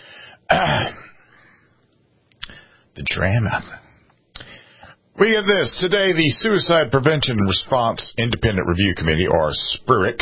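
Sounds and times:
faint breathy noise: 0.0 - 0.5, 2.4 - 3.0, 3.7 - 5.2
person clearing throat: 0.5 - 1.3
speech: 3.0 - 3.8, 5.2 - 10.2.

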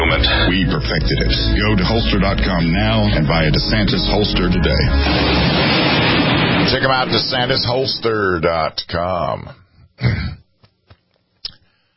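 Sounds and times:
speech: 0.5 - 10.4
throat clearing: 10.0 - 10.5.

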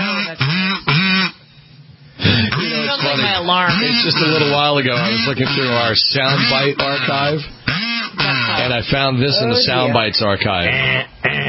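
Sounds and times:
person imitating goose honks: 0.0 - 1.4, 2.2 - 8.8, 10.6 - 11.4
speech: 3.2 - 11.1.

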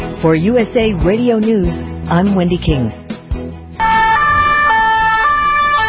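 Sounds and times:
speech: 0.2 - 3.0
police siren alternating between two high tones in a city street: 3.8 - 5.8.

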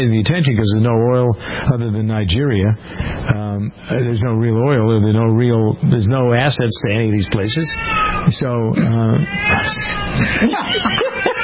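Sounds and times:
speech: 0.0 - 11.4
deaf cat meowing loudly: 7.6 - 10.4
laughter: 10.0 - 11.4.

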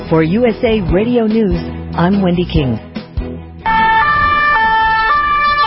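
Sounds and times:
speech: 0.1 - 2.9
loud two-tone police siren on a Paris city street: 3.6 - 5.6.

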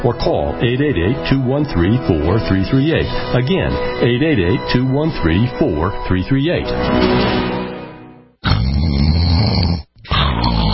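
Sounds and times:
speech: 0.0 - 7.5
loud rasping snoring at night: 8.4 - 10.7.

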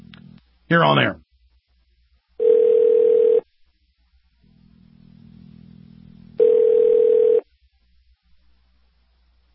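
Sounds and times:
faint low hum: 0.0 - 9.5
speech: 0.7 - 1.2
electronic ringback tones of an outgoing telephone call: 2.4 - 3.4, 6.4 - 7.4.

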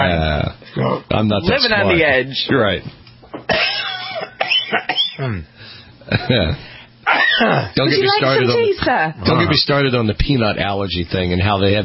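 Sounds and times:
speech: 1.1 - 3.8, 4.7 - 6.7, 7.4 - 11.8
person coughing after choking on a peanut product: 3.5 - 5.5, 6.1 - 7.8
throat clearing after choking on a peanut product: 3.5 - 7.8.

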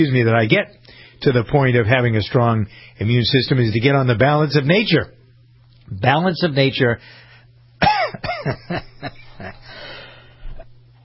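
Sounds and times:
speech: 0.0 - 5.2, 5.9 - 7.2, 7.8 - 9.8
person coughing harshly: 7.8 - 9.6.

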